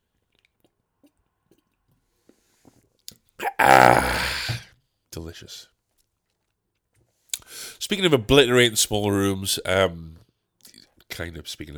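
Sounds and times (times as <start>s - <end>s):
sipping and swallowing water: 3.1s - 4.6s
person breathing: 3.4s - 4.6s
speech: 5.4s - 5.8s, 7.9s - 10.2s, 11.2s - 11.7s.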